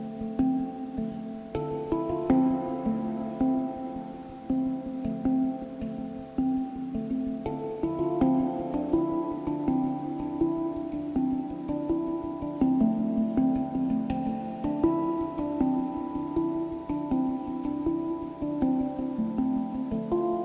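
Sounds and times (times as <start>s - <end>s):
handpan played in a flowing pattern of ringing metallic notes: 0.0s - 20.4s.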